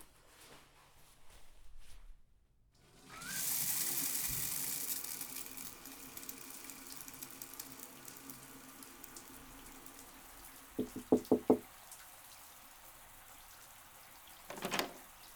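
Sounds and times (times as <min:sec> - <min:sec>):
shower water running: 0:02.8 - 0:15.3
quick knocks: 0:10.8 - 0:11.6, 0:14.5 - 0:15.0.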